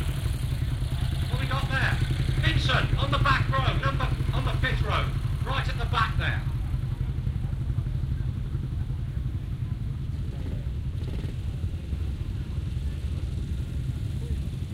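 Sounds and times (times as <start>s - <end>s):
classic British motorcycle engines rumbling riding into an arena: 0.0s - 14.7s.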